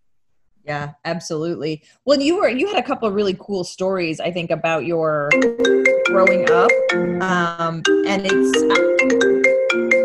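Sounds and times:
speech: 0.6s - 10.0s
melodic electronic phone ringtone: 5.3s - 10.0s.

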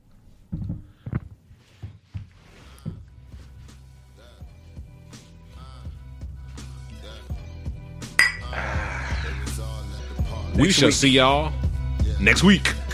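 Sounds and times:
glasses clinking together in a toast: 8.2s - 8.6s
speech: 10.6s - 11.6s, 12.2s - 12.8s.

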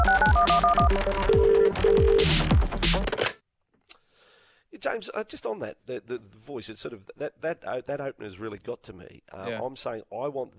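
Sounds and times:
Motorola flip phone ringtone: 0.0s - 2.4s
speech: 4.9s - 10.5s.

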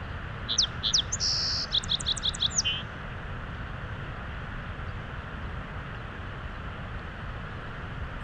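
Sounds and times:
soft background hiss: 0.0s - 8.2s
song sparrow song: 0.4s - 2.9s.

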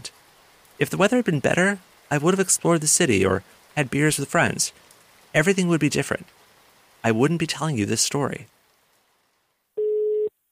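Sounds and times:
speech: 0.8s - 6.4s, 7.0s - 8.6s
telephone ringback tone of an outgoing work call: 9.8s - 10.3s.

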